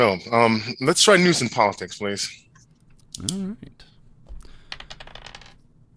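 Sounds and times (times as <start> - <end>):
speech: 0.0 - 2.4, 3.2 - 3.9
plastic dice tumbling across a hard surface: 4.3 - 5.6.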